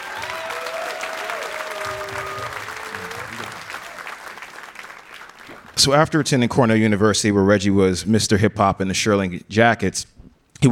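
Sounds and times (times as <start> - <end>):
audience round of applause: 0.0 - 6.2
speech: 5.8 - 10.7.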